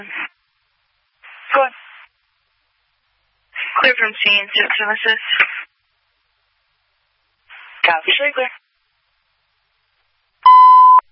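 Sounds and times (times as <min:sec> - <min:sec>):
speech: 0:00.0 - 0:00.2, 0:03.8 - 0:05.6, 0:07.9 - 0:08.6
fire dispatch radio nightly high-pitched test tone beep: 0:10.4 - 0:11.0.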